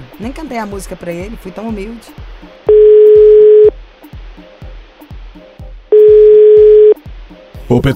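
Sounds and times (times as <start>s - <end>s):
speech: 0.2s - 2.8s, 7.8s - 7.9s
telephone line tones after a dropped call: 2.7s - 3.7s, 5.9s - 7.0s.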